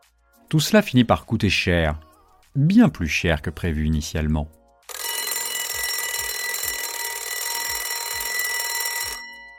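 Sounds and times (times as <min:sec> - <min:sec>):
speech: 0:00.5 - 0:04.6
mechanical alarm clock ringing: 0:04.9 - 0:09.5.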